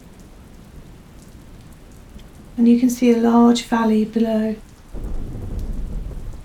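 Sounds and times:
heavy rain: 0.0s - 6.4s
thunder rumbling: 0.8s - 6.4s
speech: 2.6s - 4.7s.

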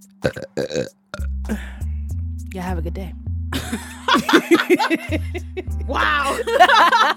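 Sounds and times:
deep rumbling belch: 0.2s - 1.4s
person burping: 0.2s - 1.7s
speech: 2.9s - 3.8s, 4.7s - 7.1s
laughter: 3.6s - 7.1s.

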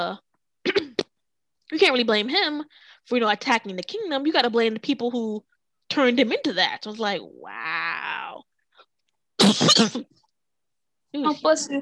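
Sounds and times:
speech: 0.0s - 0.2s, 1.7s - 8.5s, 9.4s - 10.2s, 11.1s - 11.7s
person coughing: 0.6s - 1.1s, 9.4s - 10.1s.

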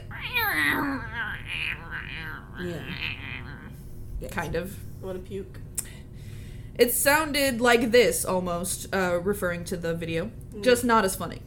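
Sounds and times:
cat making warbling speech-like meows and chirps: 0.0s - 3.7s
speech: 4.2s - 5.7s, 6.8s - 11.4s.

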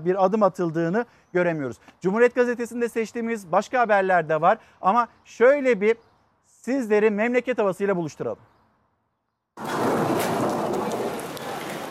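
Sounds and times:
speech: 0.0s - 8.5s, 9.6s - 9.9s
steady heavy rain in Düzce: 9.6s - 11.9s.

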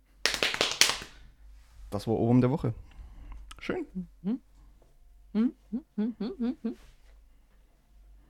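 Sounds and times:
quick sharp hand clapping: 0.2s - 1.2s
speech: 1.9s - 2.9s, 3.6s - 4.5s, 5.3s - 7.0s.

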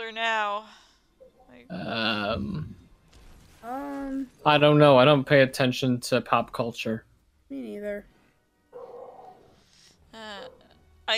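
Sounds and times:
speech: 0.1s - 0.8s, 1.5s - 2.8s, 3.6s - 8.1s
dog barking: 8.7s - 9.6s.

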